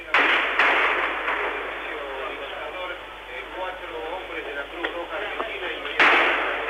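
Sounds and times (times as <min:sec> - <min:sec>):
murmuring voices: 0:00.0 - 0:06.6
sniper gunfire outside military headquarters: 0:00.1 - 0:02.1, 0:06.0 - 0:06.6.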